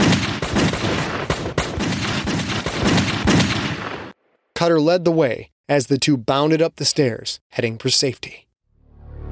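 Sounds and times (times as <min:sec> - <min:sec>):
gunshots fired at random into a dark basement: 0:00.0 - 0:04.2
speech: 0:04.6 - 0:08.5.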